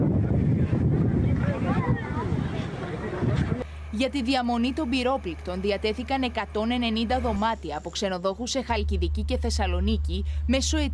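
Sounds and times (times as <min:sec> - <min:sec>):
heavy steady wind buffeting the microphone: 0:00.0 - 0:03.6
low coast guard boat engine rumble: 0:00.0 - 0:10.9
waves at a beach: 0:00.5 - 0:03.6
speech: 0:04.0 - 0:10.9.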